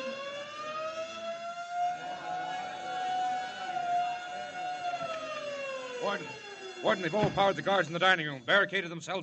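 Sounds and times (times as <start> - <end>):
loud prison alarm siren wailing: 0.0 - 9.2
speech: 6.0 - 9.2.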